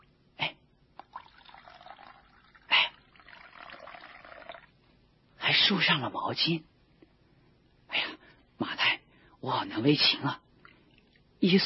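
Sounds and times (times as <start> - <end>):
water pouring into a basin: 1.0 - 4.8
speech: 5.6 - 6.7, 9.5 - 10.4, 11.4 - 11.6.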